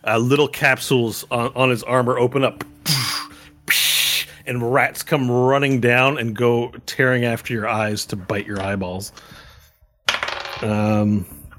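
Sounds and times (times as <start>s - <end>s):
speech: 0.0s - 2.7s, 4.5s - 9.4s, 10.6s - 11.4s
dice rolled during a tabletop role-playing game: 10.1s - 10.8s.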